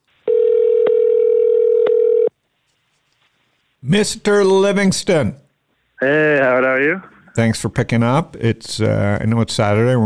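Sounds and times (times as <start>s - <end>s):
telephone dial tone while placing a call to Toronto: 0.3s - 2.3s
speech: 3.9s - 5.4s, 6.0s - 10.0s.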